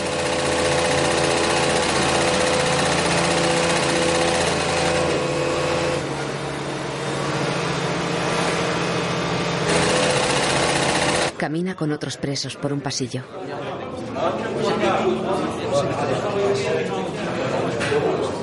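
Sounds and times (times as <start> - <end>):
sewing machines whirring in a prison workshop: 0.0 - 11.4
speech: 11.5 - 13.6, 14.2 - 18.3.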